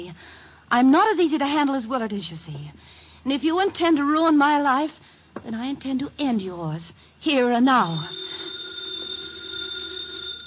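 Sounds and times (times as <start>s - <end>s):
speech: 0.0s - 8.4s
old telephone bell ringing: 7.8s - 10.4s.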